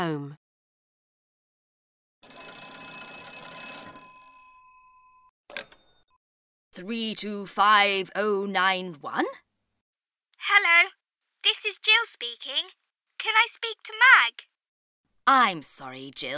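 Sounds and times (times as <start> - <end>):
speech: 0.0 - 0.4, 6.8 - 9.4, 10.4 - 14.5, 15.2 - 16.3
telephone bell ringing: 2.2 - 5.9.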